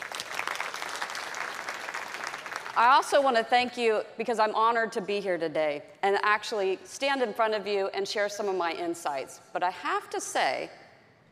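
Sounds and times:
audience of men and women applauding at a talk: 0:00.0 - 0:02.8
speech: 0:02.8 - 0:10.8.

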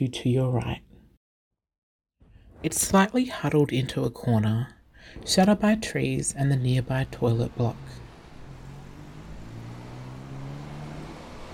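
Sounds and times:
speech: 0:00.0 - 0:00.9, 0:02.6 - 0:08.0
steady low rumble of cars on a busy road: 0:05.0 - 0:11.5
vehicle engine drone passing: 0:05.1 - 0:11.5.

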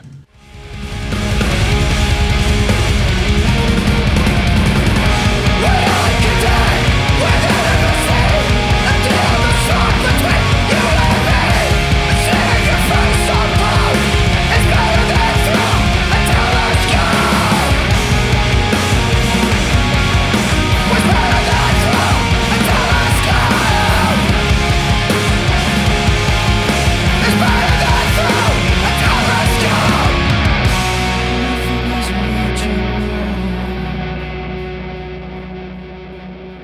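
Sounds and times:
pounding drums: 0:00.0 - 0:31.3
heavy rock song: 0:00.0 - 0:36.6
thick distorted guitars: 0:00.0 - 0:36.6
male singer screaming desperate vocals: 0:05.4 - 0:17.9, 0:27.1 - 0:30.3.

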